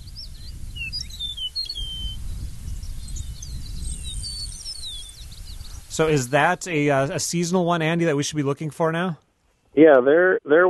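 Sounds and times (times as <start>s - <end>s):
eastern meadowlark song: 0.0s - 7.0s
speech: 6.0s - 9.2s, 9.8s - 10.6s.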